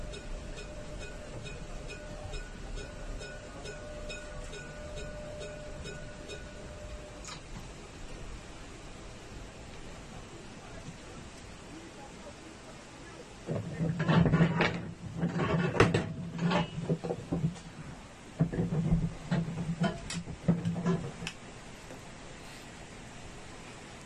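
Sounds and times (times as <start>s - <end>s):
light regular ticking: 0.0s - 8.5s, 18.4s - 22.0s
faint electric whine of a tram: 0.0s - 24.0s
tram driving along a street rolling rumble: 0.0s - 24.0s.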